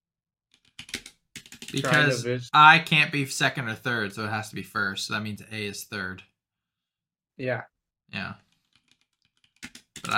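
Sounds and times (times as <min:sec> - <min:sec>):
computer keyboard typing: 0:00.5 - 0:01.9, 0:08.5 - 0:10.1
speech: 0:01.7 - 0:06.3, 0:07.4 - 0:08.4, 0:10.0 - 0:10.1.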